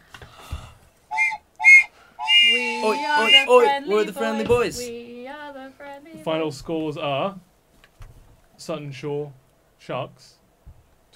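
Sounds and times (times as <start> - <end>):
referee's final whistle blasts: 1.1 - 3.8
speech: 2.8 - 5.0, 6.2 - 7.5, 8.6 - 10.4.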